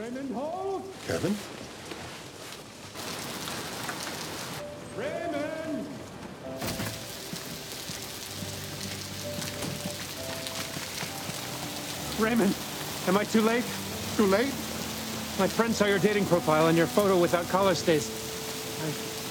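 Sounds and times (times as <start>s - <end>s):
speech: 0.1s - 1.6s, 12.2s - 14.6s, 15.4s - 18.2s, 18.8s - 19.2s
heavy rain pouring: 1.1s - 19.3s.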